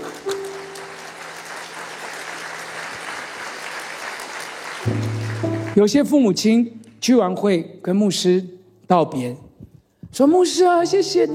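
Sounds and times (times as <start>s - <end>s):
large crowd clapping in a big room: 0.0s - 6.7s
speech: 4.8s - 9.4s, 10.2s - 11.3s.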